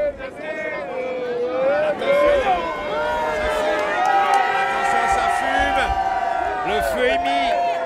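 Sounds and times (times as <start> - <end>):
crowd at an outdoor bonfire cheering and shouting: 0.0 - 7.8.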